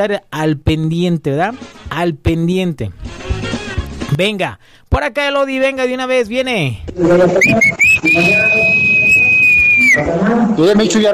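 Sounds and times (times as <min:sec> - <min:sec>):
speech: 0:00.0 - 0:03.2, 0:04.1 - 0:09.0, 0:10.0 - 0:11.1
person whistling short rising chirps and a long high whistle: 0:07.4 - 0:10.0.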